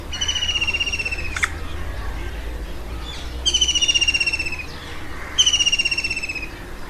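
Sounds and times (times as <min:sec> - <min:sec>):
bird trilling: 0:00.0 - 0:02.0, 0:03.0 - 0:06.6
sharp click: 0:01.3 - 0:01.6.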